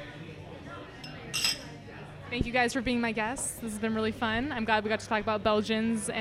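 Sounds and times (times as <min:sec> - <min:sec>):
low murmur of voices in the room: 0:00.0 - 0:06.1
empty beer glasses clinking in a toast: 0:01.0 - 0:01.8
speech: 0:02.3 - 0:06.1.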